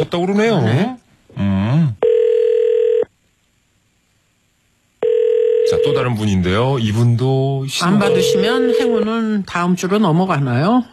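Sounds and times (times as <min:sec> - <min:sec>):
speech: 0:00.0 - 0:01.9, 0:05.8 - 0:10.9
ringback tone from a phone line: 0:02.0 - 0:03.1, 0:05.0 - 0:06.2, 0:07.9 - 0:09.1.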